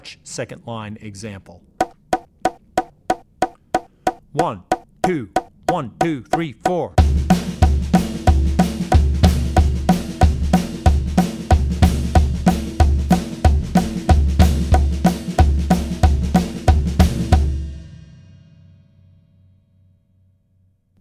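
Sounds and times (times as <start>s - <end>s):
New Orleans second line jazz drums: 1.8s - 17.6s.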